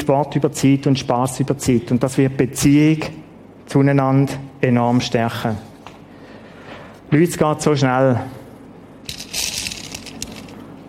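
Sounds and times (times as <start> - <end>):
speech: 0.0 - 5.7, 7.1 - 8.4
large glass jar of marbles shifted and handled: 9.1 - 10.6.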